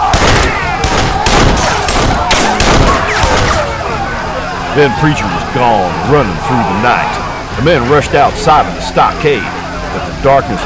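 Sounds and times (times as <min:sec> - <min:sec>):
two pistols fired through a gun slit in a stockade: 0:00.1 - 0:03.8
speech: 0:04.8 - 0:09.6, 0:10.2 - 0:10.6.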